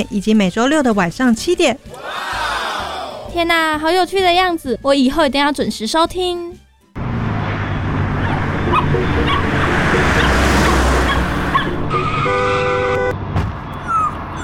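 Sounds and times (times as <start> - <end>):
speech: 0.0 - 2.0, 3.4 - 6.6
loud continuous street traffic: 7.0 - 14.4
small dog yelping and whimpering in distress after being hit on the road: 13.8 - 14.4.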